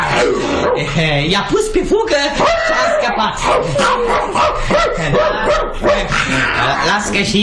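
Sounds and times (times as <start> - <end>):
speech: 0.2 - 7.3
dog barking and yelping: 2.4 - 6.4.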